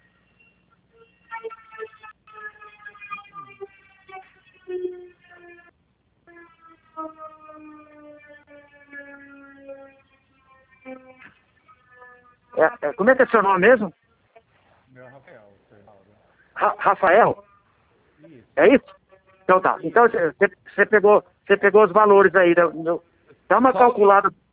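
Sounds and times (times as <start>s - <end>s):
siren wailing: 0.0s - 14.0s, 16.6s - 17.8s, 18.6s - 20.4s
speech: 12.6s - 14.0s, 16.9s - 17.4s, 18.6s - 24.4s.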